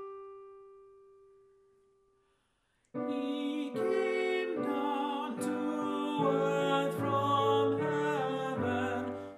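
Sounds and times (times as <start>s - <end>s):
alto singing a carol: 3.0s - 9.3s.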